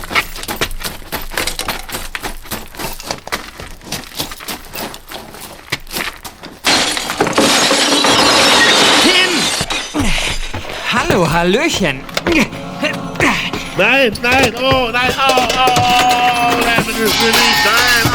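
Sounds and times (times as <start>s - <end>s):
window glass smashed to break into a house: 6.6s - 18.1s
speech: 11.4s - 12.6s, 13.8s - 18.1s.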